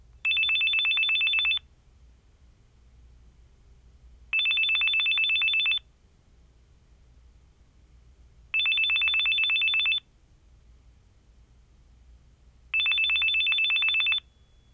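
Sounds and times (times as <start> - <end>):
phone: 0.2 - 1.7, 4.3 - 5.9, 8.5 - 10.1, 12.7 - 14.7.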